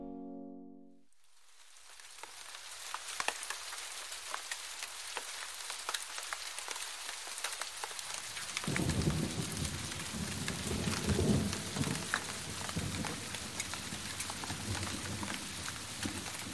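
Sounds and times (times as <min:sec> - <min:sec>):
steady rain hissing: 0:01.0 - 0:16.5
low rolling thunder: 0:08.7 - 0:13.2.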